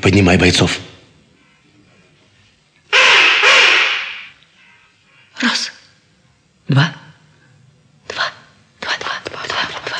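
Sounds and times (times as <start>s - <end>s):
speech: 0.0s - 0.9s, 5.4s - 5.7s, 6.7s - 7.0s
harsh raspy magpie calls: 2.9s - 4.3s.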